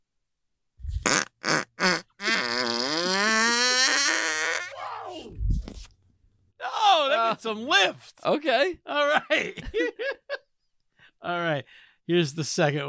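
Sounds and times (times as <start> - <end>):
recorded fart: 0.8 - 4.8
speech: 7.4 - 10.2, 11.2 - 12.8.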